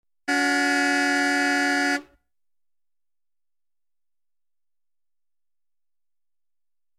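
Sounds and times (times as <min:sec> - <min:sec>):
sedan car horn honking: 0:00.3 - 0:02.2.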